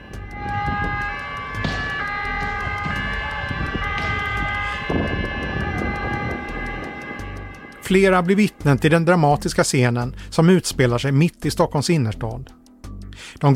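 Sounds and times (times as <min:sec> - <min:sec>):
rapid ticking pulse: 0:00.0 - 0:10.4
police sirens: 0:00.0 - 0:10.5
rumbling street background: 0:00.0 - 0:13.5
speech: 0:07.9 - 0:12.6, 0:13.3 - 0:13.5.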